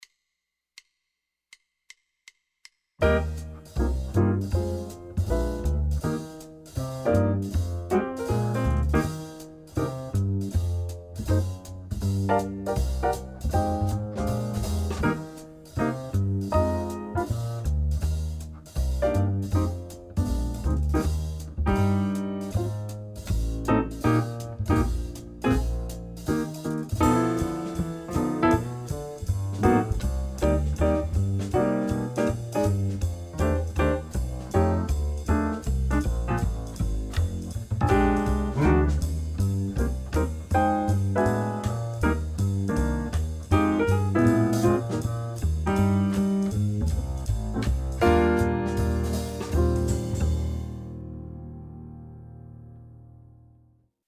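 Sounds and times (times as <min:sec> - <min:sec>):
up-tempo swing wind instruments: 0:03.0 - 0:51.0.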